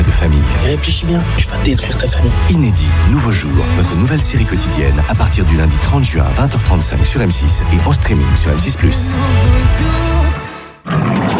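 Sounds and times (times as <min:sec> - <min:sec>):
speech: 0:00.2 - 0:11.3
panther roaring: 0:10.8 - 0:11.3.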